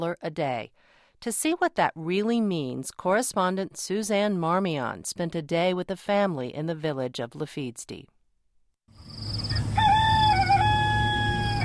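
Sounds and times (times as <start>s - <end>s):
speech: 0.0s - 8.1s
rooster crowing in a village in Malawi: 9.3s - 11.6s.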